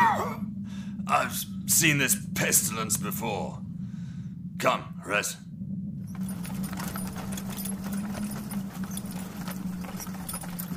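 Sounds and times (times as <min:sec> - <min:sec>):
low constant drone: 0:00.0 - 0:10.7
speech: 0:01.1 - 0:03.7, 0:04.6 - 0:05.5
jangling metal: 0:06.0 - 0:10.7
hooves of a mule pulling a wagon along a misty street: 0:06.1 - 0:10.7.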